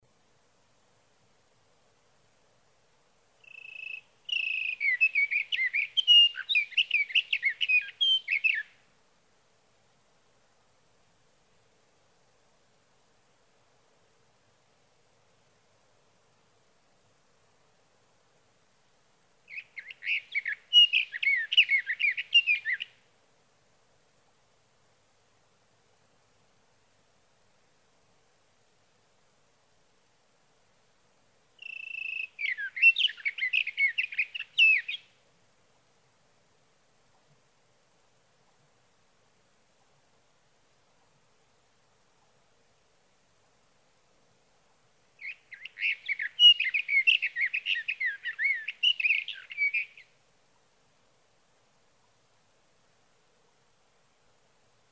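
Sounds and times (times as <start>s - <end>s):
Sage thrasher singing through the night: 3.5s - 8.7s, 19.5s - 22.9s, 31.6s - 35.1s, 45.2s - 50.1s.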